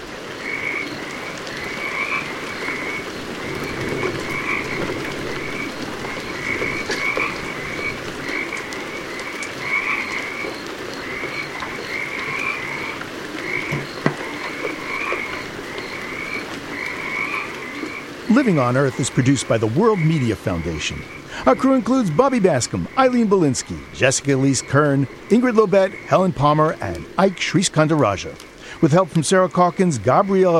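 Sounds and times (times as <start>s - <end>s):
Pacific chorus frogs croaking in winter rain: 0.0s - 30.5s
steady hiss: 0.0s - 30.5s
speech: 18.4s - 30.5s.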